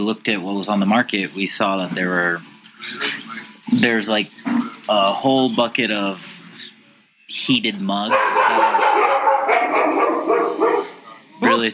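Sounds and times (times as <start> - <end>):
speech: 0.0 - 6.7, 7.3 - 9.0, 11.4 - 11.7
several dogs barking and yipping: 8.0 - 11.7.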